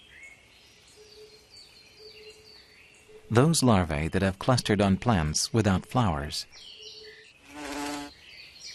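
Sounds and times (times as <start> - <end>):
speech: 3.3 - 6.8
faint high insect whine: 7.4 - 8.2
hoverfly buzzing: 7.4 - 8.2.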